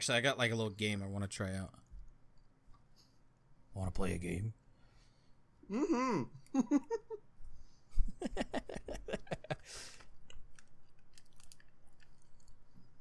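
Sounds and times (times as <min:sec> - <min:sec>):
speech: 0:00.0 - 0:01.8, 0:03.8 - 0:04.6, 0:05.7 - 0:07.2, 0:08.2 - 0:08.8, 0:09.5 - 0:10.0
person chewing crunchy snack: 0:10.0 - 0:13.0.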